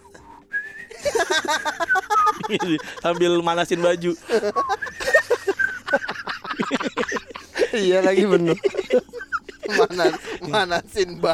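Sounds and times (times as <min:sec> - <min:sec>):
person whistling a short melodic tune: 0:00.3 - 0:02.5
laughter: 0:00.9 - 0:11.3
speech: 0:01.5 - 0:04.8, 0:07.8 - 0:09.1, 0:09.7 - 0:11.3.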